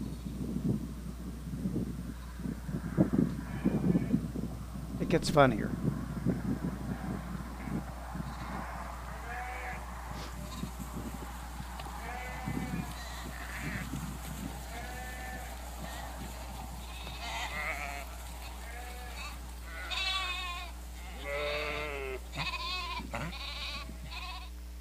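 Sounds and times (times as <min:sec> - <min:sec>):
steady low rumble of wind: 0:00.0 - 0:24.4
sheep bleating: 0:03.4 - 0:04.2, 0:06.9 - 0:24.6
speech: 0:05.1 - 0:05.9.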